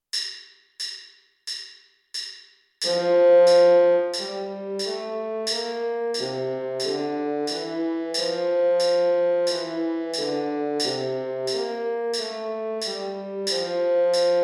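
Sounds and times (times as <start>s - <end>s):
baritone trombone playing an F major scale: 2.8s - 14.4s.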